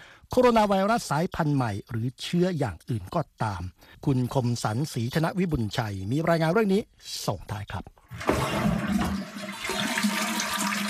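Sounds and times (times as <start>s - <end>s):
speech: 0.3s - 9.2s
toilet flushing: 8.0s - 10.8s.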